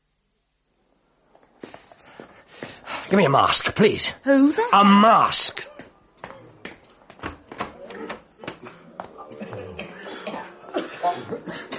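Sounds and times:
speech: 3.1 - 5.7
man with pneumonic plague coughing up blood: 9.3 - 11.7.

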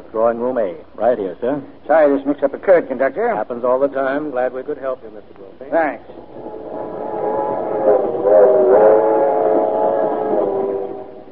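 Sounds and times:
speech: 0.1 - 6.6
passenger train rolling along the rails: 6.1 - 11.3.

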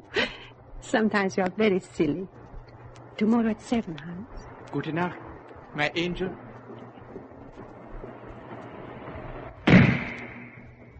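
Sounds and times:
faint steady hum: 0.0 - 10.9
speech: 0.8 - 2.4, 3.2 - 6.4
sniper gunshot: 9.6 - 10.9.

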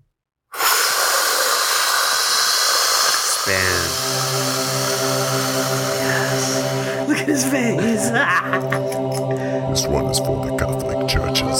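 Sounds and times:
nitrous oxide gas hissing out: 0.5 - 7.1
speech: 3.5 - 3.8, 6.6 - 11.5
laughter: 6.0 - 10.5.

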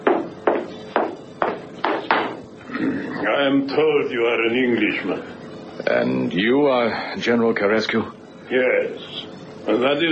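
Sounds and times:
hard-soled footsteps at walking pace: 0.0 - 2.4
speech: 3.2 - 10.0.

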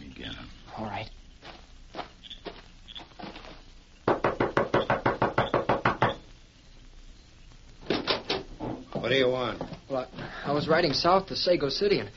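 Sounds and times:
faint room noise: 0.0 - 12.1
speech: 0.8 - 1.2, 9.1 - 12.1
knocking on a wooden door: 4.1 - 6.2.

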